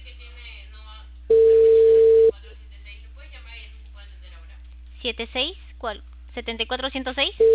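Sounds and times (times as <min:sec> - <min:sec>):
telephone ringing tone through a call line: 0:01.3 - 0:02.3
speech: 0:05.0 - 0:07.5.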